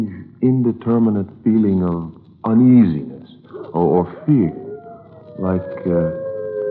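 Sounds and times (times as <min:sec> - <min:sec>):
speech: 0:00.0 - 0:04.6, 0:05.4 - 0:06.2
coyote howling: 0:03.5 - 0:06.6.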